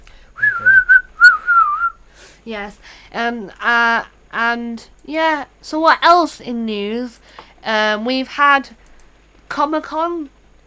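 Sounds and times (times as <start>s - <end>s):
person whistling in imitation of chattering puppet characters: 0.4s - 2.0s
speech: 2.4s - 8.8s, 9.6s - 10.4s.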